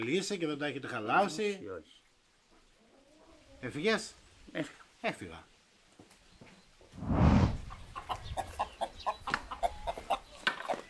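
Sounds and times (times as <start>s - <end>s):
speech: 0.0s - 2.0s, 3.6s - 5.5s
low rustle or thump: 6.9s - 7.7s
hen clucking: 7.6s - 10.8s.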